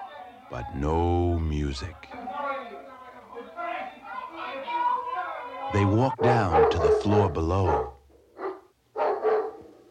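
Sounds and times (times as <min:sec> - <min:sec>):
speech: 0:00.5 - 0:02.3, 0:05.7 - 0:07.9
dog barking aggressively: 0:05.7 - 0:09.7.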